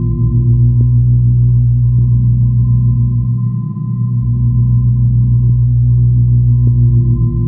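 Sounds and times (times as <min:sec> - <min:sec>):
machines humming: 0:00.0 - 0:07.4.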